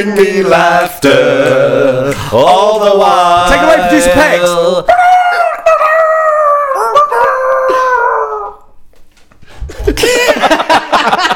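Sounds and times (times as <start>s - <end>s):
speech: 0.1s - 1.6s, 2.1s - 5.2s
person imitating chicken clucking: 4.9s - 8.7s
laughter: 9.7s - 11.3s.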